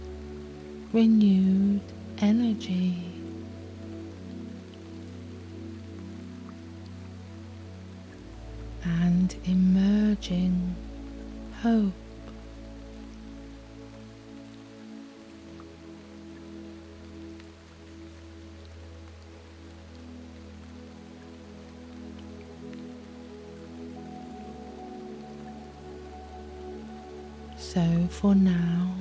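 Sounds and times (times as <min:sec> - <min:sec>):
gentle sustained music tones: 0:00.0 - 0:28.9
steady rain: 0:00.0 - 0:28.9
speech: 0:00.9 - 0:03.1, 0:09.3 - 0:10.8, 0:11.6 - 0:12.0, 0:27.8 - 0:28.8.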